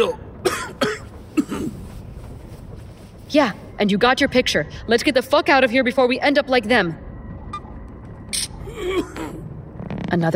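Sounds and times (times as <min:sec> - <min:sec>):
speech: 0:00.0 - 0:00.2, 0:03.3 - 0:07.0, 0:10.1 - 0:10.3
man coughing in harsh bursts: 0:00.0 - 0:01.8, 0:08.6 - 0:09.5.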